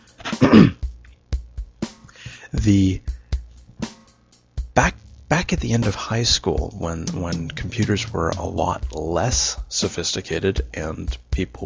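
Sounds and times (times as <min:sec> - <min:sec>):
person clearing throat: 0:00.2 - 0:00.8
speech: 0:00.4 - 0:00.8, 0:02.6 - 0:03.1, 0:04.8 - 0:11.6.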